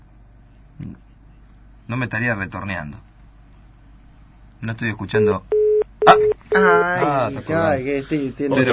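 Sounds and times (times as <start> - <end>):
speech: 1.9 - 3.1, 4.6 - 8.7
telephone redialing tones: 5.5 - 6.4.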